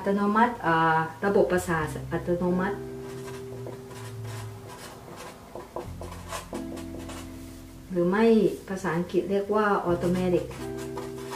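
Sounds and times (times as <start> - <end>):
speech: 0.0 - 2.9, 7.9 - 10.8
pen scratching on paper in handwriting: 3.0 - 7.3, 10.0 - 11.3.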